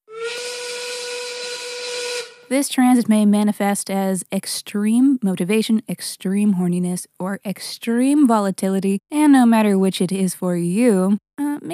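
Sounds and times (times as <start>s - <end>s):
1930s old factory steam whistle blowing with hiss of steam: 0.1s - 2.5s
speech: 2.5s - 11.7s.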